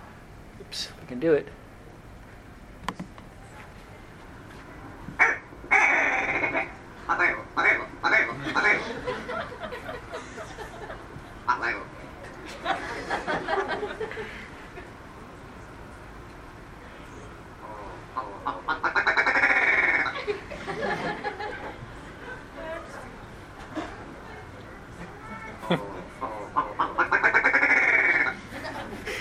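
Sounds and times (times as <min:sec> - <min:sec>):
speech: 0:00.7 - 0:01.6
ptarmigan calling with harsh croaking notes: 0:05.2 - 0:09.4, 0:11.4 - 0:12.2, 0:17.6 - 0:20.4, 0:24.3 - 0:28.4
laughter: 0:08.2 - 0:11.4, 0:12.2 - 0:15.0, 0:20.0 - 0:22.9, 0:23.6 - 0:26.6, 0:28.3 - 0:29.2.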